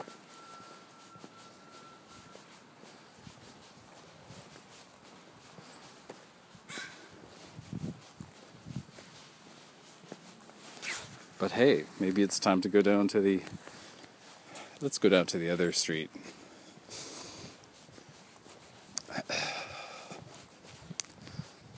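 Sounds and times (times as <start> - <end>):
crows cawing: 6.7 - 7.2
speech: 11.4 - 13.8, 14.8 - 16.4.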